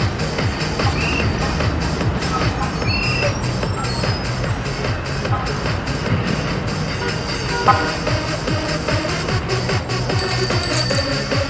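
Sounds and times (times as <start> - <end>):
dense steady traffic on a busy street: 0.0 - 11.2
short bright chimes: 10.2 - 11.4.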